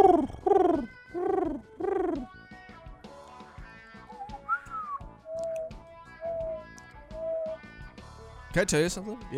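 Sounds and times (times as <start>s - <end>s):
person imitating pigeon cooing: 0.0s - 2.3s, 5.5s - 6.6s
soft whistled notes: 4.1s - 7.6s
speech: 8.6s - 9.3s.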